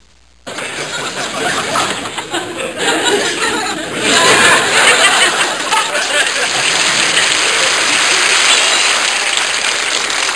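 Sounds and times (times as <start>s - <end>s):
people laughing: 0.5s - 9.2s
applause: 5.2s - 10.3s.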